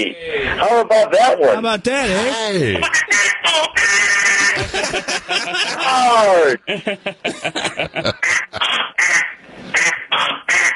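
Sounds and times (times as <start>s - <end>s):
speech: 0.0s - 3.3s, 4.6s - 9.9s
laughter: 2.7s - 9.0s
duck call blown in nasal quacks: 2.8s - 4.6s, 8.2s - 10.7s.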